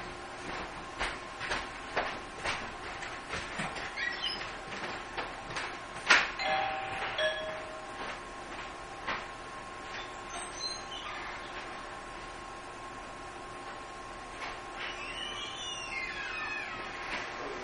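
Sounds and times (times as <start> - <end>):
steady hum: 0.0 - 17.6
doorbell chiming: 6.4 - 8.1.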